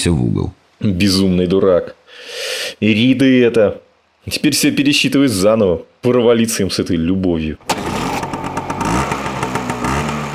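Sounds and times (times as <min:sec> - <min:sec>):
speech: 0:00.0 - 0:07.8
motorcycle engine crackling and revving: 0:07.7 - 0:10.3.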